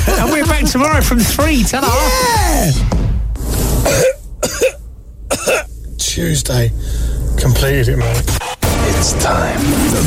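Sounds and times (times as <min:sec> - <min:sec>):
speech: 0:00.1 - 0:03.1, 0:06.2 - 0:10.0
person coughing with harsh hacking bursts: 0:03.8 - 0:05.7.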